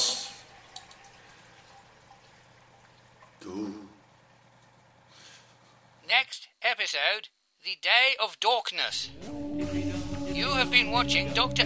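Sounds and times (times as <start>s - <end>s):
water leaking from a burst pipe: 0.0s - 5.2s
speech: 7.0s - 9.8s, 10.4s - 11.6s.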